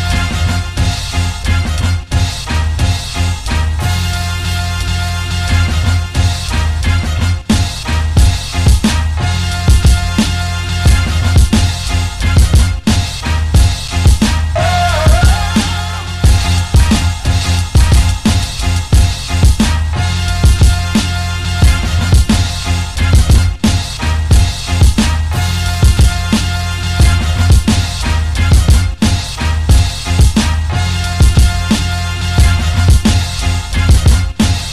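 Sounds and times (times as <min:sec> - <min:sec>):
beat: 0:00.1 - 0:34.7.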